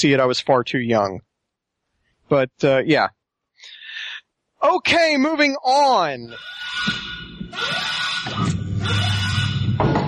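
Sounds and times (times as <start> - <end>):
speech: 0.0 - 1.3, 2.3 - 3.2, 4.6 - 8.4
perimeter alarm blaring: 6.3 - 10.0.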